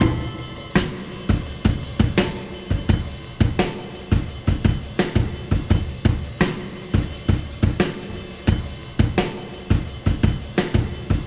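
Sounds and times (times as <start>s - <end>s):
kick drum tuned to D: 0.0s - 7.9s, 8.5s - 11.2s
breakbeat at 85 bpm in D: 0.0s - 11.2s.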